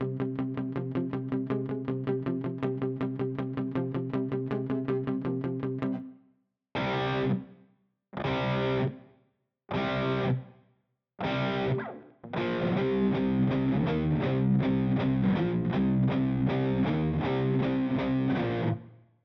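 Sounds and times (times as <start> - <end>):
large and bright guitar ambience: 0.0 - 6.1, 6.8 - 7.5, 8.2 - 9.0, 9.7 - 10.5, 11.2 - 19.0.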